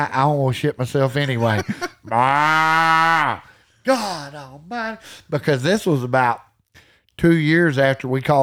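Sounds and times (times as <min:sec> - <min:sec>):
speech: 0:00.0 - 0:06.5, 0:07.2 - 0:08.4
laughter: 0:01.2 - 0:02.6
voice imitating a cow bawling: 0:02.1 - 0:04.7.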